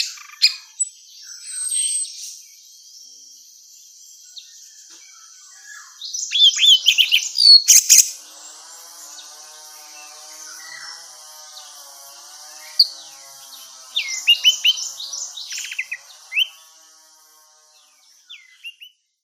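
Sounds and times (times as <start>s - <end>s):
female orange-headed thrush calling: 6.2s - 16.8s.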